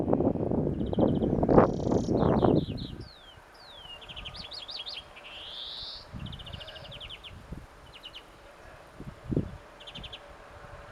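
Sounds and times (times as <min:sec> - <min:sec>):
European Greenfinch Chloris chloris calls: 0:00.8 - 0:08.4.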